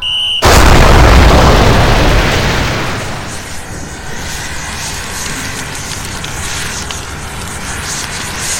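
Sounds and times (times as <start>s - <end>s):
sudden powerful explosion with deep rumble: 0.4s - 5.5s.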